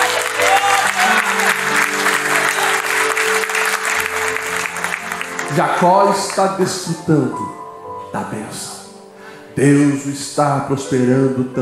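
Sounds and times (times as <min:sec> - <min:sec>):
audience applauding: 0:00.0 - 0:06.6
sustained low keyboard chords: 0:00.0 - 0:11.6
speech: 0:05.6 - 0:08.8, 0:09.6 - 0:11.6.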